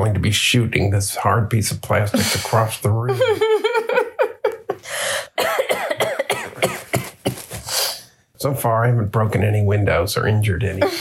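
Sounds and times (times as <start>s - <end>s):
speech: 0.0s - 3.6s, 8.4s - 11.0s
laughter: 2.1s - 4.9s
raspy wheezing breath: 4.8s - 5.4s
person coughing harshly while dilating: 5.3s - 7.7s.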